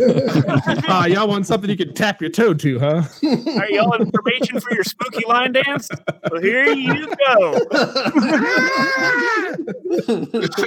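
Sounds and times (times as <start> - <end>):
laughter: 0.0 - 1.9, 2.9 - 10.6
speech: 0.0 - 10.6
voices chattering: 0.0 - 10.6
child wailing: 8.1 - 9.7, 10.4 - 10.6.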